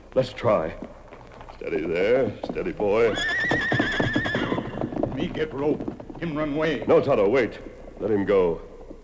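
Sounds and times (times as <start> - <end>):
heavy thudding hoofbeats: 0.1 - 9.0
speech: 0.2 - 1.0, 1.6 - 3.9, 5.4 - 8.7
white horse whinnying: 3.0 - 5.1.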